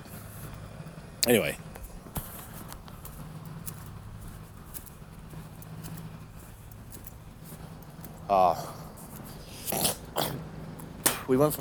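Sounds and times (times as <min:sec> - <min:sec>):
speech: 0:01.2 - 0:01.6, 0:08.3 - 0:08.8, 0:11.3 - 0:11.6
rough raspy throat clearing: 0:09.6 - 0:10.5.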